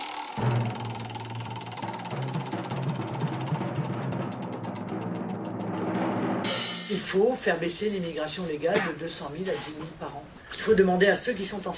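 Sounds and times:
spinning prize wheel clicking: 0.0s - 6.2s
speech: 6.9s - 11.7s.

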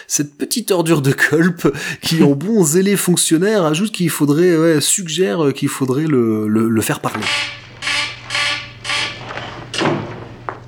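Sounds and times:
speech: 0.0s - 7.8s
laughter: 1.2s - 2.9s
red alert alarm in pulsing harmonic blasts: 7.2s - 9.2s.

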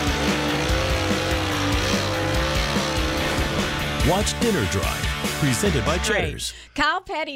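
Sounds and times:
stock race car tires squealing and skidding: 0.0s - 5.1s
stock race car engine roaring out of a parking lot: 0.0s - 6.0s
speech: 4.1s - 7.3s.

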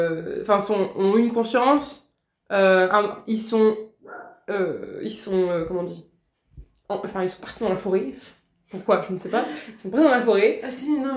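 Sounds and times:
speech: 0.0s - 6.1s, 6.9s - 11.1s
dog barking: 4.0s - 4.5s.

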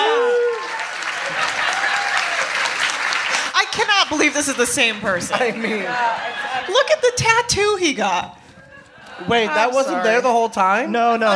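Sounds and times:
person cheering: 0.0s - 0.9s
crowd applauding: 0.0s - 5.3s
laughter: 0.0s - 7.2s, 8.5s - 10.1s
speech: 4.1s - 8.4s, 9.2s - 11.3s.

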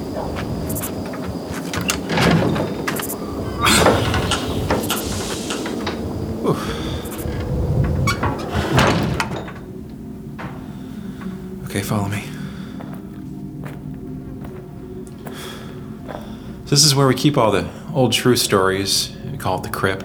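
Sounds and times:
heavy door grinding and scraping open: 0.0s - 11.6s
low rumble: 0.0s - 11.6s
faint high whine: 0.0s - 20.0s
speech: 11.9s - 12.2s, 16.7s - 20.0s.

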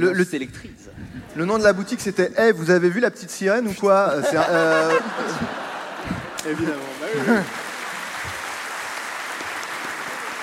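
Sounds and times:
speech: 0.0s - 7.6s
laughter: 3.7s - 8.0s
audience applause after a joke: 4.8s - 10.4s.

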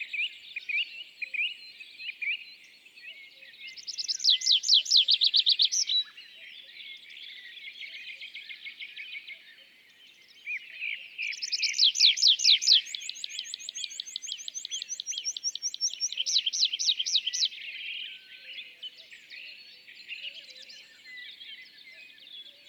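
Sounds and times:
faint birdsong: 0.0s - 22.6s
bird twittering and chirps: 3.6s - 6.2s, 10.4s - 22.6s
tree pipit Anthus trivialis singing from a perch on an isolated tree: 3.8s - 6.2s, 10.5s - 22.0s.

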